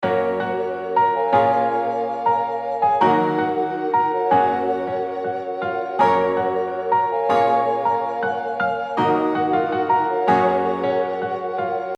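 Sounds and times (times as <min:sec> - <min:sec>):
type beat melody: 0:00.0 - 0:11.9.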